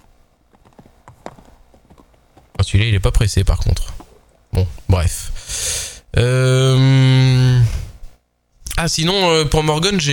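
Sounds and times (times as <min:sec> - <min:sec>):
horses' hooves clip-clopping on a hard surface: 0:00.0 - 0:02.7
speech: 0:02.6 - 0:04.0, 0:04.6 - 0:07.1, 0:08.8 - 0:10.1.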